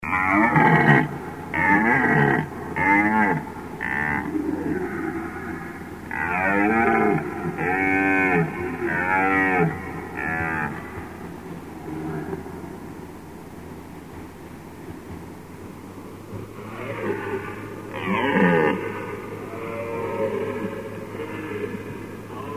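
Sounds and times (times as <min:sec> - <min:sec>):
red deer roaring in hoarse harmonic bellows: 0:00.0 - 0:12.8, 0:16.4 - 0:22.5
low steady hum: 0:00.0 - 0:22.5.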